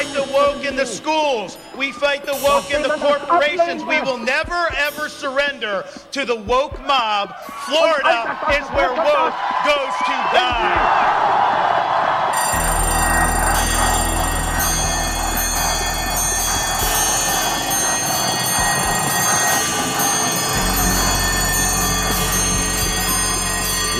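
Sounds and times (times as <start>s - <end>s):
alarm clocks ringing: 0.0s - 4.3s, 12.4s - 23.9s
speech: 0.4s - 11.5s
laughter: 7.7s - 12.2s.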